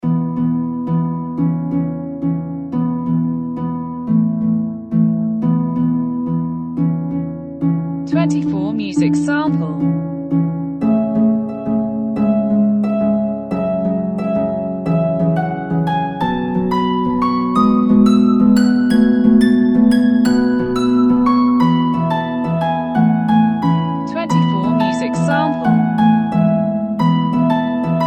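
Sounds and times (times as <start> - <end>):
harp: 0.0 - 28.0.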